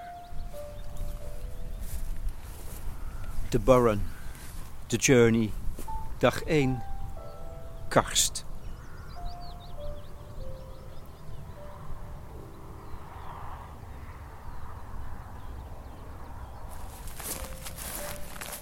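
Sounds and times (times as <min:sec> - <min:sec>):
soft chiming tones: 0:00.0 - 0:02.2, 0:05.9 - 0:08.3, 0:09.2 - 0:13.3, 0:17.2 - 0:18.6
birds chirping faintly: 0:00.0 - 0:18.6
footsteps crunching outdoors in early morning in Doolin, a village in Ireland: 0:00.4 - 0:06.4, 0:16.7 - 0:18.6
speech: 0:03.5 - 0:04.2, 0:04.9 - 0:05.6, 0:06.2 - 0:06.9, 0:07.9 - 0:08.5.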